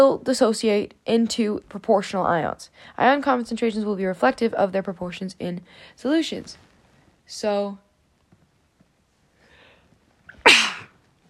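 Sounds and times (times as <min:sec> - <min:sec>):
speech: 0:00.0 - 0:06.7, 0:07.3 - 0:07.8
sneeze: 0:10.3 - 0:11.0.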